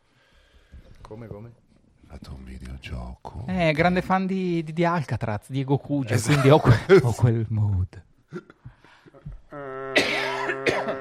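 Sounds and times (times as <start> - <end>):
speech: 1.1 - 8.5
person groaning throatily: 9.5 - 10.9
person coughing harshly: 9.8 - 10.9.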